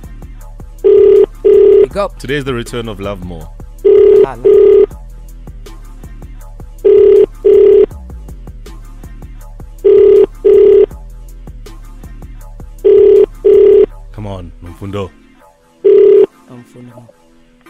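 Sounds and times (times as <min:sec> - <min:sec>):
telephone double-pulse ringing tone after dialing: 0:00.8 - 0:01.9, 0:03.8 - 0:04.9, 0:06.9 - 0:07.9, 0:09.8 - 0:10.9, 0:12.8 - 0:13.9, 0:15.8 - 0:16.3
speech: 0:02.0 - 0:03.6, 0:04.2 - 0:04.9, 0:14.8 - 0:15.2, 0:16.6 - 0:17.2.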